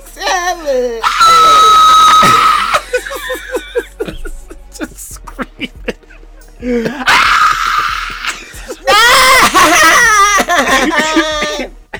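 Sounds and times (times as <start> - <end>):
person screaming and crying: 0.2 - 3.9, 6.7 - 11.7
speech: 0.6 - 1.0, 6.6 - 7.1
laughter: 2.2 - 11.9.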